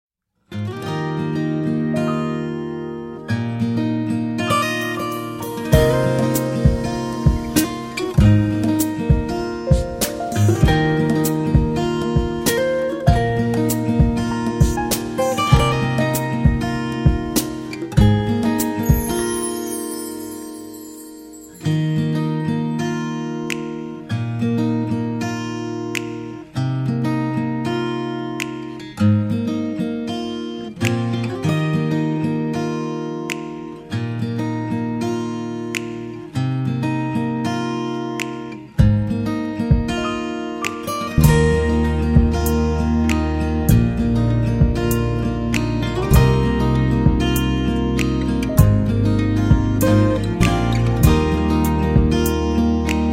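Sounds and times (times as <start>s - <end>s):
guitar: 0.4s - 53.1s.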